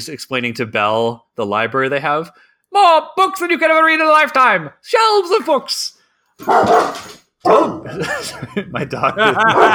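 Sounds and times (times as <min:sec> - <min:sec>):
person reading aloud in a character voice: 0:00.0 - 0:06.1
speech: 0:00.0 - 0:09.7
dog barking loudly in sharp excited yelping barks: 0:06.4 - 0:08.0, 0:09.4 - 0:09.7
laughter: 0:07.7 - 0:09.7.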